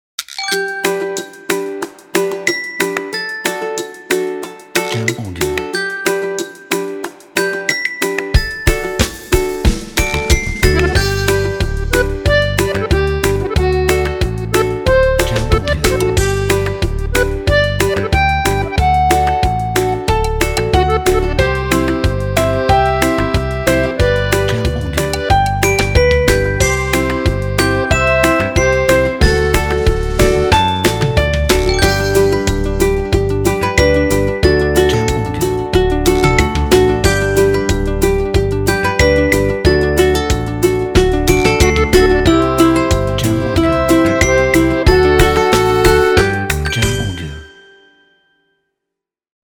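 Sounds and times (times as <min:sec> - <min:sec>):
acoustic children's music: 0:00.2 - 0:48.4.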